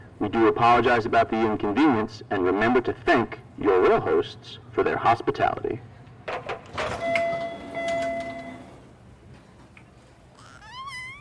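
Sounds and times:
speech: 0:00.2 - 0:05.9
subway train arriving at station rumbling in: 0:07.0 - 0:09.2.

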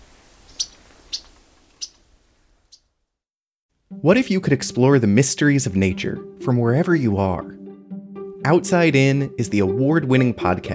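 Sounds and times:
Yellow-rumped Warbler chip calls: 0:00.5 - 0:02.0
speech: 0:04.0 - 0:07.6, 0:08.4 - 0:10.7.

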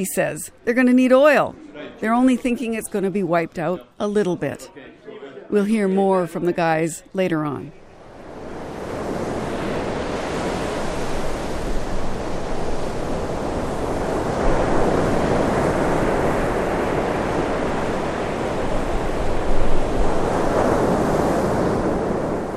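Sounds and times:
speech: 0:00.0 - 0:04.9, 0:05.5 - 0:07.8
waves washing onto a beach in winter weather: 0:08.0 - 0:22.5
wind noise: 0:08.0 - 0:22.5.

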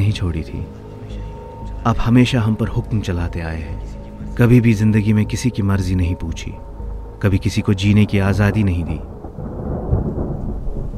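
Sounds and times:
speech: 0:00.0 - 0:00.9, 0:01.8 - 0:09.1
low rumble of thunder: 0:05.0 - 0:10.9
heavy rain: 0:07.8 - 0:10.9.

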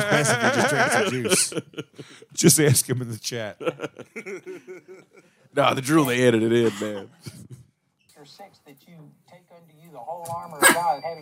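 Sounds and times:
laughter: 0:00.0 - 0:02.3, 0:02.9 - 0:05.4
speech: 0:00.0 - 0:07.4, 0:08.2 - 0:11.1
dog barking and yelping: 0:10.6 - 0:10.9.

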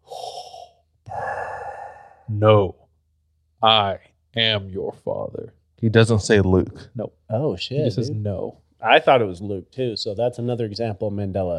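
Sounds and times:
person imitating heavy mask respirator breathing: 0:00.0 - 0:02.4
speech: 0:02.3 - 0:02.8, 0:03.6 - 0:11.5.

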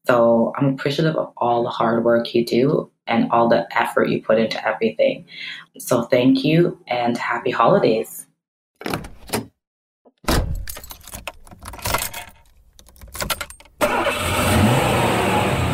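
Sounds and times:
speech: 0:00.1 - 0:08.2, 0:08.8 - 0:09.1
car keys jingling and rattling: 0:10.4 - 0:13.8
car engine cranking, catching and idling: 0:13.8 - 0:15.7.

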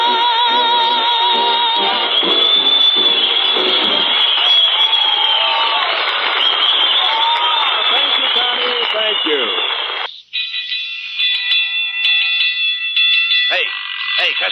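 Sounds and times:
noisy crowd-like commotion: 0:00.0 - 0:10.1
alarm bell ringing: 0:01.4 - 0:05.1, 0:07.7 - 0:14.4.

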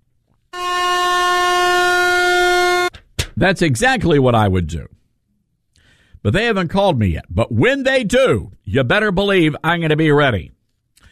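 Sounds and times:
loud air horn blast: 0:00.5 - 0:03.0
speech: 0:03.4 - 0:05.0, 0:06.2 - 0:10.6.

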